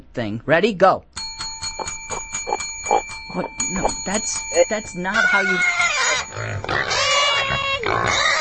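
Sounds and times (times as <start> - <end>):
speech: 0.2 - 1.1, 3.3 - 8.4
pig grunting: 5.1 - 8.4.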